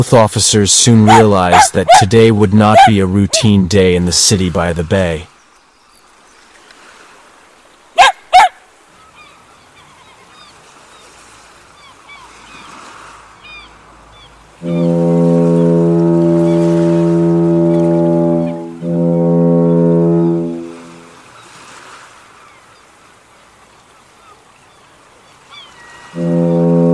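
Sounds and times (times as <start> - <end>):
speech: 0.0 - 5.3
deep loud foghorn blasting in a city by the bay: 14.5 - 21.3, 26.0 - 26.9.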